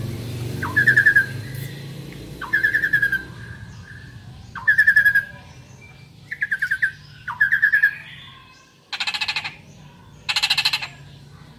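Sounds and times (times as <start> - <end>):
Asian pied starling giving rattling bursts of harsh pulsed notes: 0.0 - 11.5.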